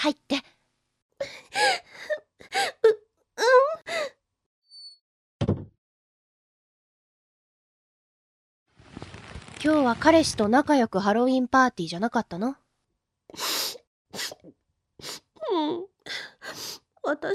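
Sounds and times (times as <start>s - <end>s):
speech: 0.0s - 0.5s, 9.7s - 12.6s, 17.1s - 17.3s
person crying and wailing: 1.6s - 4.1s.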